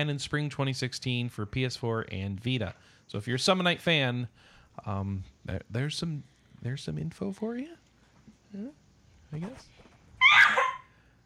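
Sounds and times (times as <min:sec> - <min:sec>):
speech: 0:00.0 - 0:07.8, 0:08.5 - 0:09.8
loud sneeze: 0:10.2 - 0:10.9.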